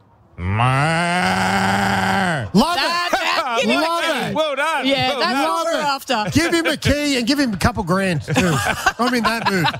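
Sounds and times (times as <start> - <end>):
speech: 0.4 - 1.0, 6.0 - 9.7
man imitating a cow's moo: 0.4 - 2.5
laughter: 2.6 - 7.3, 8.0 - 9.7.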